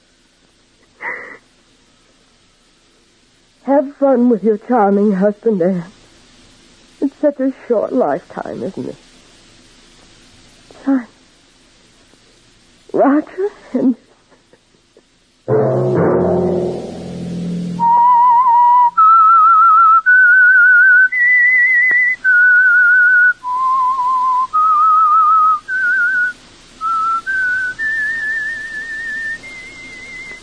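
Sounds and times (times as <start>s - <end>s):
speech: 3.7s - 6.0s, 7.2s - 9.0s, 10.8s - 11.1s
burst of lower tones: 15.5s - 19.0s
solo whistled theme melody of sustained sliding notes: 17.8s - 30.4s.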